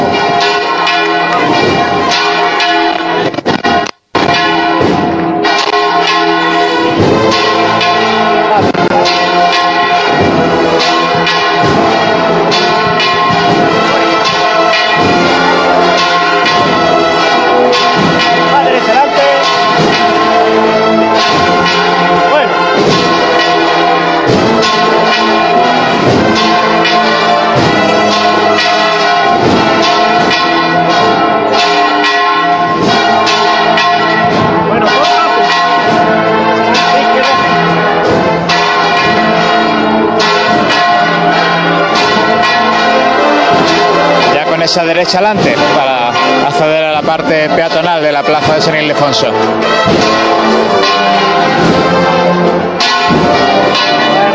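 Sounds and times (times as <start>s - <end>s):
church bells pealing in the morning: 0.0s - 54.3s
speech: 44.8s - 46.0s, 47.0s - 50.6s.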